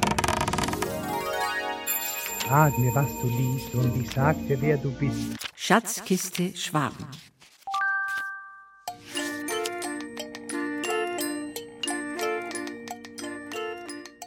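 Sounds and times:
busy rhythmic tinkling melody with a low backing: 0:00.9 - 0:05.2, 0:07.8 - 0:14.2
bright bell ringing a rising series of clear tones: 0:01.8 - 0:05.0
speech: 0:02.5 - 0:07.3.

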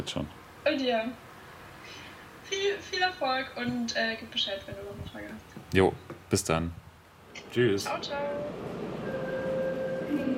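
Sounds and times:
speech: 0:00.0 - 0:01.3, 0:01.9 - 0:06.8, 0:07.4 - 0:09.0
subway train rumbling in motion: 0:07.8 - 0:10.3
sustained whining tone of a subway train: 0:07.9 - 0:10.3.

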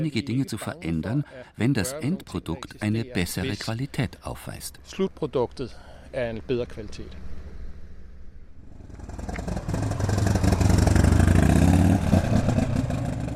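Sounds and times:
speech: 0:00.0 - 0:07.3
motorcycle arriving in a harbour: 0:05.1 - 0:13.3.

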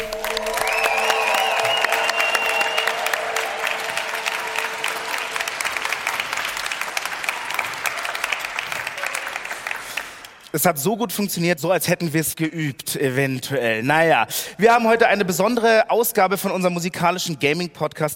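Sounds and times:
large live audience in a hall applauding and cheering: 0:00.0 - 0:10.6
shrill whistle: 0:00.2 - 0:04.1
speech: 0:10.6 - 0:18.1.

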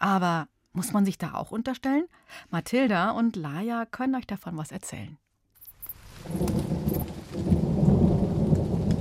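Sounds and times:
speech: 0:00.1 - 0:05.2, 0:06.2 - 0:06.6
steady rain: 0:05.8 - 0:08.9
deep rumble of thunder: 0:06.0 - 0:08.9.

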